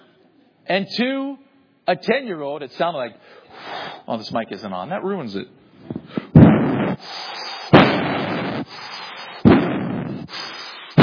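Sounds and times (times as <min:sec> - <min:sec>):
speech: 0:00.7 - 0:05.9
imitated heavy footsteps stomping up stairs: 0:05.9 - 0:07.0, 0:07.7 - 0:08.6, 0:09.4 - 0:10.3.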